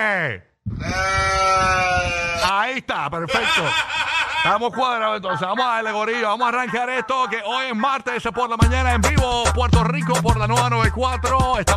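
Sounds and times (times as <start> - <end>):
speech: 0.0 - 1.8, 2.7 - 11.7
goat bleating: 0.8 - 2.5
laughter: 3.3 - 7.8.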